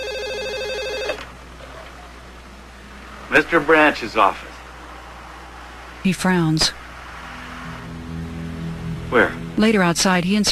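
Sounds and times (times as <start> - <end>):
telephone ringing with an electronic trill: 0.0 - 1.4
speech: 3.3 - 4.5, 6.0 - 6.8, 9.1 - 10.5.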